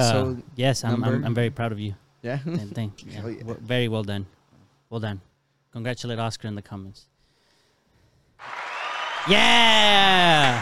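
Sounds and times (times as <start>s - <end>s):
speech: 0.0s - 7.1s, 9.2s - 10.6s
applause: 8.4s - 10.6s
person cheering: 8.5s - 10.6s.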